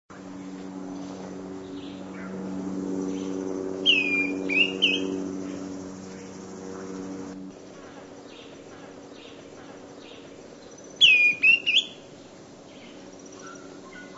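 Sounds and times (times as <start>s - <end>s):
steady low hum: 0.1s - 14.1s
Greenish Schiffornis Schiffornis virescens whistling: 3.8s - 5.2s, 11.0s - 12.0s.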